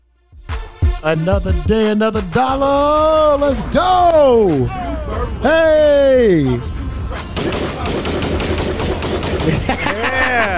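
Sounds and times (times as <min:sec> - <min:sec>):
speech: 0:01.0 - 0:06.7, 0:09.6 - 0:10.5
laughter: 0:04.5 - 0:08.0, 0:09.4 - 0:10.5
gunshot sound effect of rapid shots: 0:07.2 - 0:10.0.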